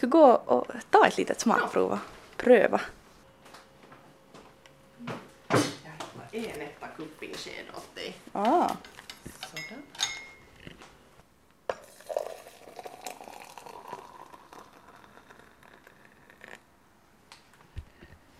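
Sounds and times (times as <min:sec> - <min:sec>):
speech: 0:00.0 - 0:03.0, 0:06.3 - 0:08.9
glassy clinks: 0:09.5 - 0:10.5
water poured into a cup with coffee in the bottom: 0:11.7 - 0:16.6.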